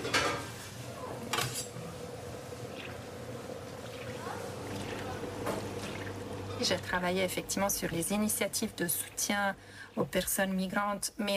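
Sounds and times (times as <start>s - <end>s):
meat samosas cooking: 0.4s - 10.2s
utensils and dishes clinking: 1.3s - 1.8s
speech: 6.6s - 11.3s.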